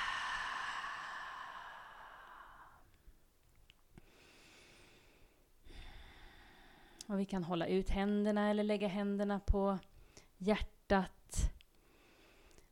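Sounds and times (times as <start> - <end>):
deep breaths in through the nose and exhaling: 0.0 - 2.9, 4.0 - 7.0, 11.8 - 12.7
speech: 7.1 - 11.4.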